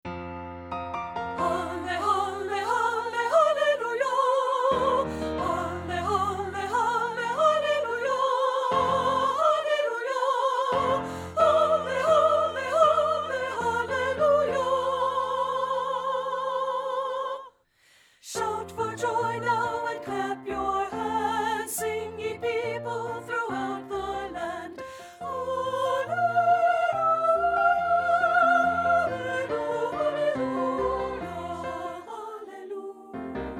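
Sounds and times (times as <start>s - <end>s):
treble soprano voice: 1.4s - 17.6s, 18.2s - 33.5s.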